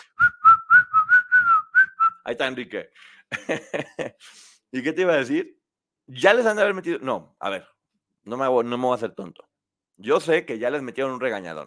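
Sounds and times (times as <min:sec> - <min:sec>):
person whistling short notes: 0:00.0 - 0:02.2
speech: 0:02.3 - 0:11.6
laughter: 0:03.3 - 0:04.3.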